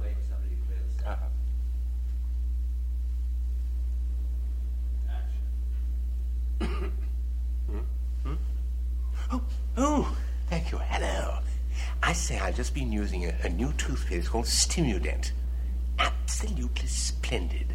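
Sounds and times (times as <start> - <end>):
steady low electrical hum: 0.0 - 17.7
short soft coughs or throat-clearing: 6.6 - 7.2
speech: 12.1 - 15.4, 16.3 - 17.7.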